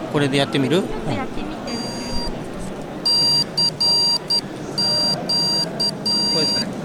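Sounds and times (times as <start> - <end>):
speech: 0.2 - 1.4
electronic beeps from a battery-powered kit assembled from parts: 1.7 - 2.4, 3.1 - 6.7.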